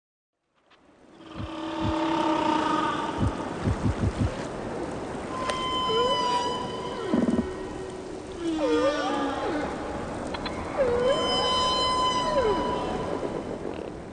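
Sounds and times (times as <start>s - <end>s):
whale calls: 1.2s - 4.0s, 5.3s - 14.1s
low underwater rumble: 3.2s - 4.4s.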